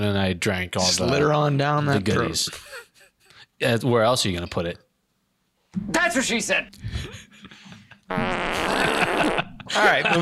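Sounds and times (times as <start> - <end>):
speech: 0.0 - 2.8, 3.6 - 4.8, 5.7 - 10.2
quiet noise: 0.0 - 10.2
laughter: 2.1 - 3.3, 6.8 - 10.2
loud sustained fart: 8.1 - 9.5.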